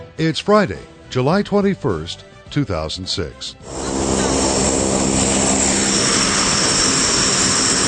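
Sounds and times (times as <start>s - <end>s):
speech: 0.2s - 3.8s
two C-130H military transport aircraft engines spooling up on a hot airport flight line: 3.6s - 7.8s.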